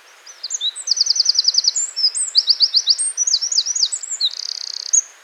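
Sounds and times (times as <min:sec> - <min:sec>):
wren singing: 0:00.2 - 0:05.1.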